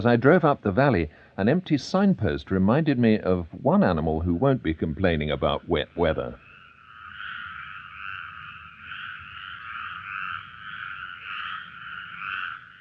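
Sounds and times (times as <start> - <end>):
speech: 0.0 - 6.4
chorus of toads croaking in trills: 3.9 - 12.7.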